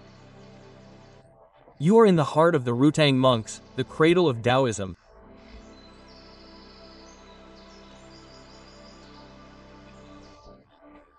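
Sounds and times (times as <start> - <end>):
speech: 1.8 - 5.0
birds singing and chirping in a forest: 5.6 - 10.4.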